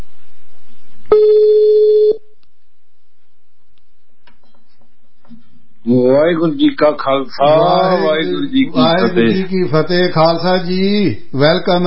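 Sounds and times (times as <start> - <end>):
faint hum: 0.0 - 11.8
ringback tone of an outgoing telephone call: 1.1 - 2.2
speech: 5.9 - 11.8.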